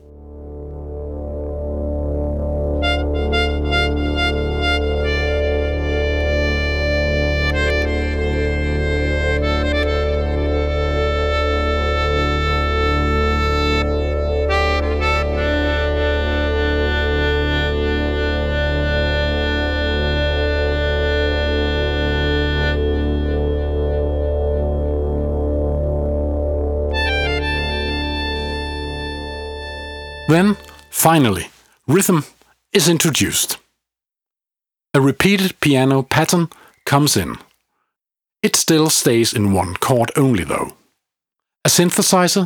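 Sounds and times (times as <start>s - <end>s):
distorted electric guitar feedback drone: 0.1s - 31.0s
slow melodica solo: 2.6s - 31.4s
speech: 30.3s - 33.6s, 34.9s - 37.5s, 38.4s - 40.8s, 41.6s - 42.4s.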